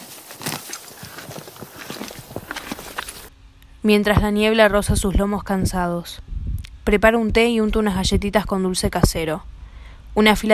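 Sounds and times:
horses walking with hooves clip-clopping: 0:00.0 - 0:03.3
speech: 0:03.8 - 0:06.3, 0:06.9 - 0:09.5, 0:10.2 - 0:10.5.

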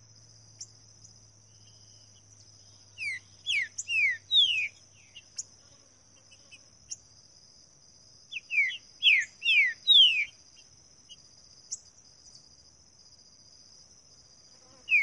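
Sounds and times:
green-winged saltator singing falling whistles in the wild bush: 0:03.0 - 0:05.2, 0:08.3 - 0:10.3, 0:14.9 - 0:15.0.

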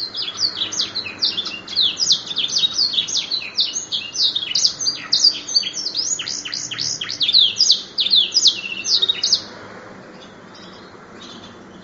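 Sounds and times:
Atlantic canary song: 0:00.0 - 0:11.8.

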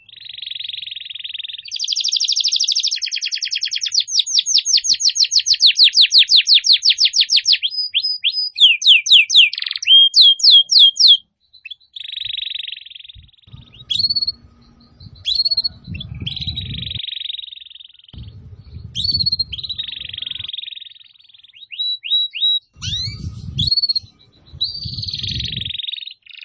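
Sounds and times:
Atlantic canary song with rapid trills and buzzy phrases: 0:00.0 - 0:26.4
faint low rumble: 0:13.2 - 0:17.0, 0:18.2 - 0:20.5, 0:22.8 - 0:25.7.

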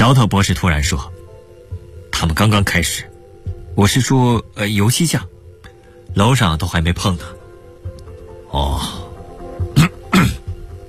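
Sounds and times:
speech: 0:00.0 - 0:01.2, 0:02.2 - 0:03.1, 0:03.8 - 0:05.4, 0:06.1 - 0:07.4
throat clearing: 0:09.8 - 0:10.5.

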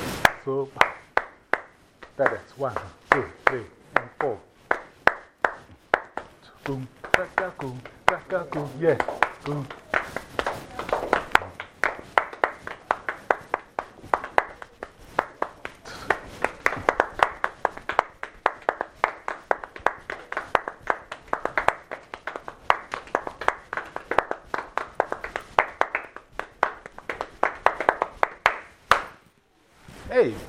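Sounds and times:
audience clapping hands at a gathering: 0:00.2 - 0:29.2
speech: 0:00.4 - 0:01.0, 0:02.2 - 0:04.5, 0:06.7 - 0:10.2.

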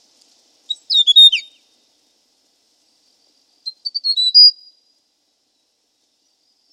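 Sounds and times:
hill prinia twittering and chirping: 0:00.7 - 0:01.6, 0:03.6 - 0:04.7.

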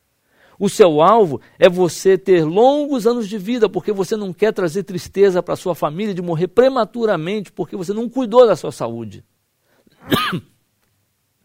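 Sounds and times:
speech: 0:00.6 - 0:09.4, 0:10.0 - 0:10.5
person coughing: 0:10.0 - 0:10.6.

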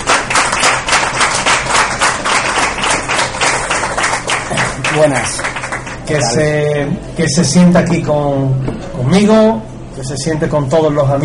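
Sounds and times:
studio audience applause on a talk show: 0:00.0 - 0:06.3
speech: 0:05.0 - 0:05.5, 0:06.1 - 0:11.2.

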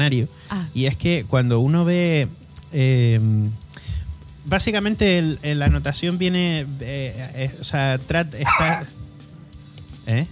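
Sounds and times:
speech: 0:00.0 - 0:03.6, 0:04.4 - 0:09.0, 0:10.1 - 0:10.3
dog barking in high yelping barks: 0:08.4 - 0:08.9.

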